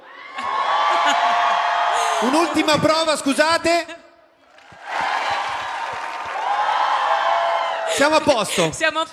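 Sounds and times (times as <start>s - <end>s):
crowd applause: 0.0s - 2.8s, 4.4s - 8.7s
large audience cheering with whoops and yells: 0.0s - 3.5s, 4.4s - 8.7s
speech: 2.2s - 4.0s, 8.0s - 9.1s.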